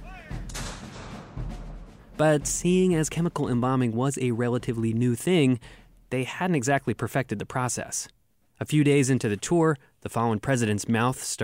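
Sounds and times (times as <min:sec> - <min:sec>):
cannon booms fired as farewell at a president's funeral in Indianapolis: 0:00.0 - 0:02.5
speech: 0:02.2 - 0:11.4.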